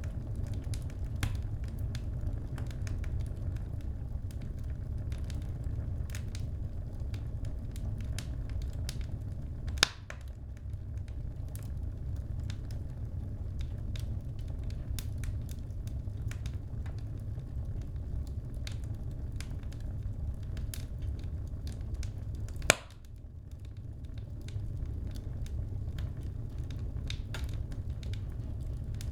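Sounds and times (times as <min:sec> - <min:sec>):
fire crackling in a wood burning stove: 0:00.0 - 0:29.1
small sharp pops and snaps from the fire: 0:22.6 - 0:23.0.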